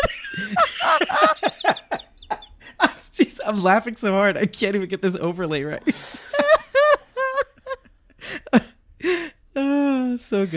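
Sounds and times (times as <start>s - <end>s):
laughter: 0.0s - 3.1s, 5.8s - 7.9s
chicken squawking: 0.8s - 2.6s
speech: 3.5s - 6.2s, 10.2s - 10.5s.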